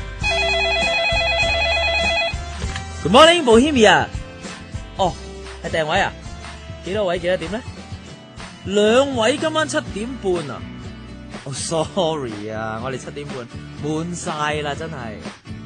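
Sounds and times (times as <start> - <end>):
telephone ringing with a warbling electronic trill: 0.2 - 2.5
speech: 3.1 - 4.2, 5.0 - 6.2, 6.9 - 7.7, 8.7 - 10.7, 11.5 - 15.4.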